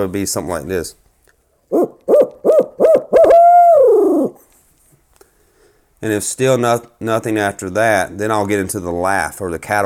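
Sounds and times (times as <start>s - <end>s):
speech: 0.0s - 1.0s, 6.0s - 9.8s
person imitating a barred owl hoot: 1.7s - 4.4s.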